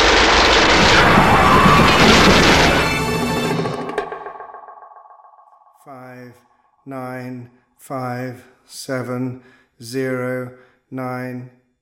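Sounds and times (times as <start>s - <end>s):
heavy gunfire as soldiers open fire: 0.0s - 4.6s
speech: 6.8s - 11.6s.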